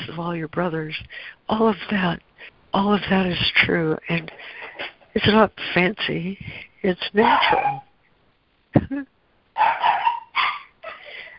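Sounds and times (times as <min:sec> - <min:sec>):
speech: 0:00.2 - 0:07.9, 0:08.7 - 0:10.1
dog barking: 0:07.2 - 0:07.9, 0:09.6 - 0:11.0.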